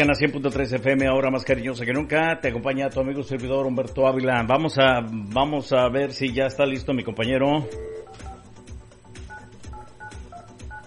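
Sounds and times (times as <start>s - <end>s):
speech: 0.0s - 8.3s
touch-tone telephone keypad beeps: 7.6s - 8.5s, 9.2s - 10.8s.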